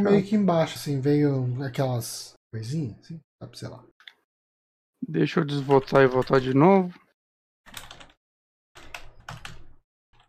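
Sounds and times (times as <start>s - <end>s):
speech: 0.0s - 3.9s, 5.0s - 7.0s
fast forceful typing on a computer keyboard: 7.7s - 8.2s, 8.8s - 10.2s.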